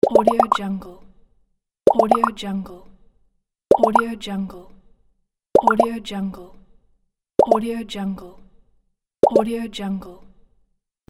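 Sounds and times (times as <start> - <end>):
bubbles popping: 0.0 - 0.6, 1.9 - 2.4, 3.7 - 4.1, 5.6 - 5.9, 7.4 - 7.6, 9.2 - 9.4.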